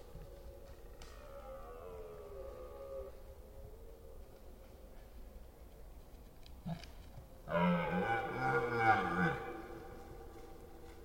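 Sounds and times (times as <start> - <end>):
rutting red deer roaring in the Forêt d'Orléans France: 1.2 - 3.2, 7.5 - 10.4.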